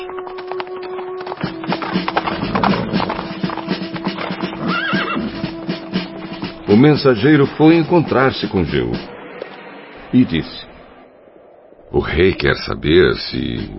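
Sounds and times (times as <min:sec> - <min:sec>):
horse hooves galloping: 0:00.0 - 0:09.1
horse whinny: 0:01.5 - 0:05.7
speech: 0:06.8 - 0:09.1, 0:10.1 - 0:10.7, 0:11.9 - 0:13.7.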